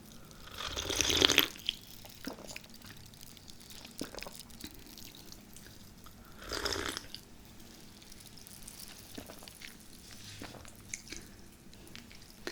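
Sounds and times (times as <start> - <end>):
person sipping a sparkly fizzy drink: 0.2 - 3.0, 3.8 - 12.5.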